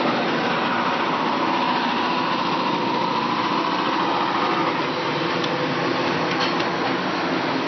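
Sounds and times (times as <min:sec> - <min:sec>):
heavy street construction equipment engine drone: 0:00.0 - 0:07.6.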